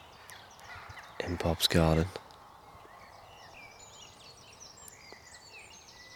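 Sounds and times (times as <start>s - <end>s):
birds calling and chirping in a garden in the early morning: 0.0s - 6.1s
speech: 1.2s - 2.2s.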